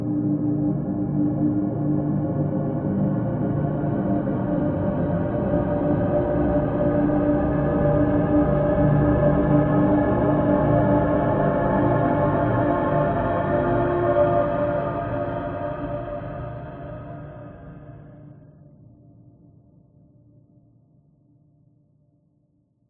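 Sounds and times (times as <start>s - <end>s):
slow-building ghostly horror drone: 0.2s - 18.3s.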